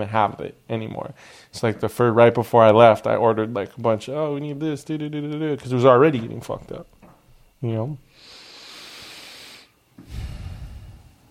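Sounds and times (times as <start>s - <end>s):
speech: 0.0s - 7.0s, 7.6s - 8.4s
heavy breathing into the microphone: 1.2s - 1.5s, 8.1s - 11.2s.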